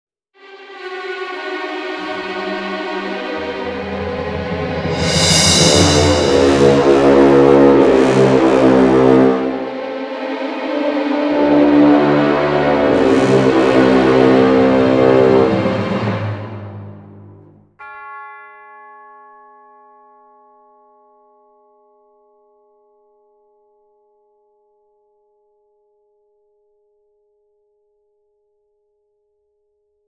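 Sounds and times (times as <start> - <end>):
fake dramatic orchestral music: 0.4 - 17.6.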